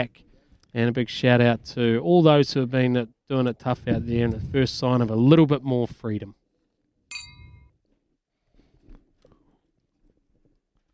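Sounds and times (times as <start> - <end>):
speech: 0.0 - 6.4
glasses clinking in a toast: 7.1 - 7.7.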